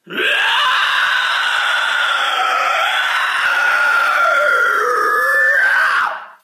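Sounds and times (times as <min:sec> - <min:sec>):
vampire scream: 0:00.0 - 0:06.4.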